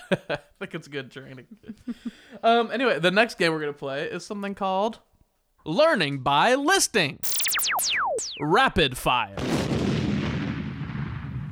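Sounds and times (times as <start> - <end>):
speech: 0.1 - 9.6
deep rumbling explosion sound effect: 9.4 - 11.5.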